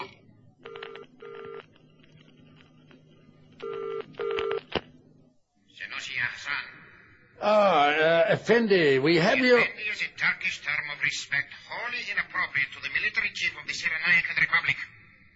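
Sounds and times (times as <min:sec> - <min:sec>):
direct telephone line to a train ringing through an amplifier: 0:00.7 - 0:01.8, 0:03.6 - 0:04.6
speech: 0:07.5 - 0:10.3, 0:12.3 - 0:14.9.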